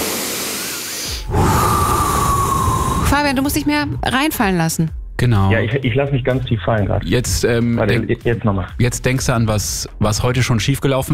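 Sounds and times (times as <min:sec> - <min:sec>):
deep slow breathing for meditation: 0:00.4 - 0:04.0
speech: 0:03.1 - 0:11.1.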